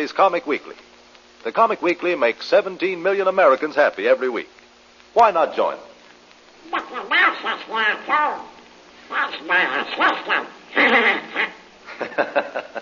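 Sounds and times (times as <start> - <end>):
speech: 0.0 - 4.6, 5.2 - 5.9, 6.6 - 12.8
voice imitating a cartoon duck squawking: 6.6 - 11.6
laughter: 11.9 - 12.8.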